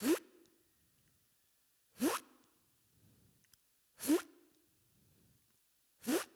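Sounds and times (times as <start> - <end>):
zipper: 2.0 - 2.2, 4.0 - 4.3, 6.0 - 6.3.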